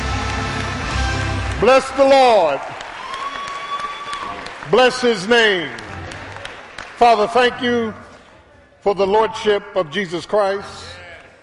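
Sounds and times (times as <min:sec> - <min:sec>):
audience clapping hands: 0:00.0 - 0:08.0
speech: 0:01.6 - 0:02.8, 0:04.7 - 0:05.8, 0:07.0 - 0:08.0, 0:08.8 - 0:10.9.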